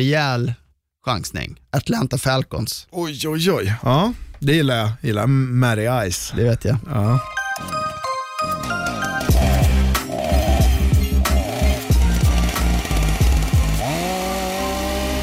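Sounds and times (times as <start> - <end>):
speech: 0.0 - 7.8
chainsaw revving and idling: 9.3 - 15.2.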